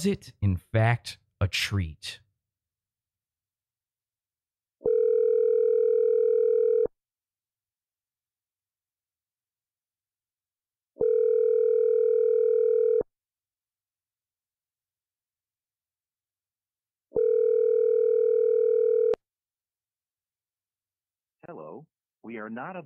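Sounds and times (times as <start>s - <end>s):
speech: 0.0s - 2.2s, 21.5s - 22.8s
telephone ringing tone of a call: 4.8s - 6.9s, 11.0s - 13.0s, 17.2s - 19.2s.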